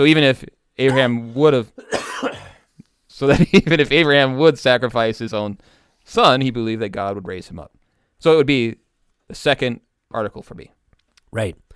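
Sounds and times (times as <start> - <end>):
speech: 0.0 - 2.4, 3.2 - 11.6
person coughing: 0.8 - 1.2, 1.8 - 2.7.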